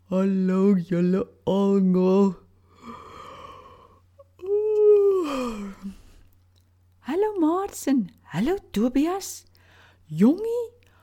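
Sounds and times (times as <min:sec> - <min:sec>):
speech: 0:00.1 - 0:02.4, 0:07.4 - 0:09.5, 0:10.1 - 0:10.8
long drawn-out yawn: 0:02.7 - 0:06.2.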